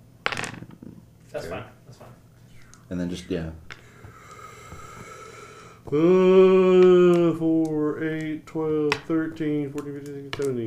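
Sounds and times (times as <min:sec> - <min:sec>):
dice rattling on a hard surface: 0:00.3 - 0:00.9, 0:06.8 - 0:10.6
speech: 0:01.3 - 0:02.2, 0:02.9 - 0:03.7, 0:05.9 - 0:10.6.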